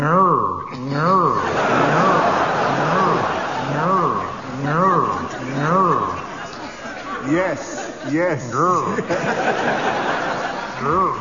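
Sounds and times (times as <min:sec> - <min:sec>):
voice imitating a car alarm: 0:00.0 - 0:06.3, 0:10.8 - 0:11.2
laughter: 0:01.0 - 0:11.2
speech: 0:08.1 - 0:10.1, 0:10.8 - 0:11.2.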